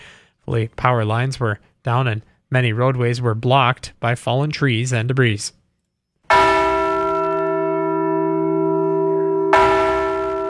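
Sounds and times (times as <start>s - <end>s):
speech: 0.5s - 5.6s
large Liberty Bell replica bell being rung: 6.3s - 10.4s.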